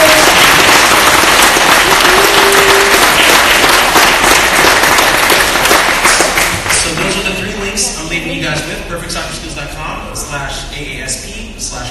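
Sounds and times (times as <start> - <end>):
audience applause: 0.0 - 7.2.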